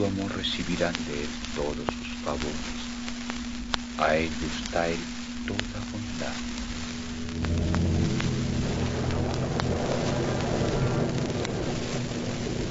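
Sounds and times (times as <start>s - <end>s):
speech: 0.0s - 2.9s, 4.0s - 6.6s
low droning hum: 0.0s - 12.6s
heavy rain: 5.7s - 12.6s.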